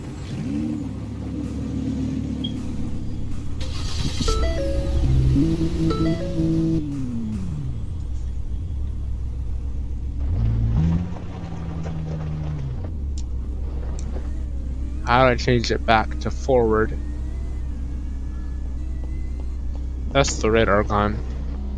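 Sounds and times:
car engine in a driving video game: 0.0 - 21.7
speech: 15.1 - 17.1, 20.2 - 21.3.

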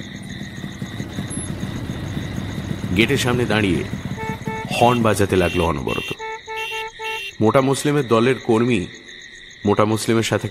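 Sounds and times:
two motorcycles arriving, engines rumbling: 0.0 - 7.4
speech: 3.0 - 4.0, 4.7 - 6.2, 7.4 - 9.0, 9.6 - 10.4.

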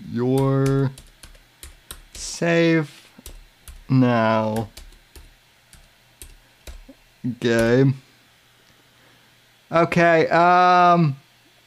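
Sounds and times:
speech: 0.2 - 1.1, 2.4 - 3.0, 3.9 - 4.8, 7.2 - 8.1, 9.7 - 11.2
computer keyboard keystrokes: 0.3 - 2.4, 3.2 - 7.0, 7.6 - 7.8.

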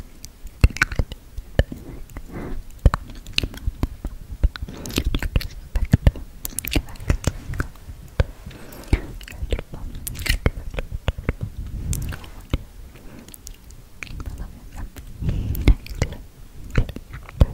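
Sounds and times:
soft crunchy chewing noises: 0.1 - 17.5
wet mouth sounds: 0.2 - 17.5
low murmuring breathy sounds: 4.5 - 17.5.

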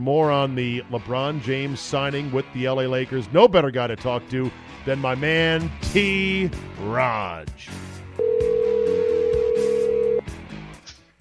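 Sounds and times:
speech: 0.0 - 7.9
low music: 0.0 - 11.1
steady electronic telephone tone: 8.2 - 10.2.

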